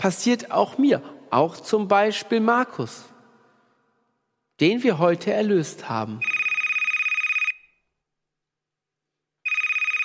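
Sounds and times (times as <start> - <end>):
speech: 0.0 - 3.1, 4.6 - 6.3
electronic telephone ringing for an incoming caller: 6.2 - 7.7, 9.4 - 10.0.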